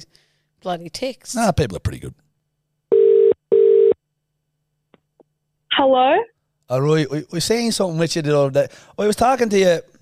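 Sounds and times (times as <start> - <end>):
speech: 0.0 - 2.2, 5.8 - 9.9
telephone ringback tone with buzzing pulses: 2.9 - 4.0.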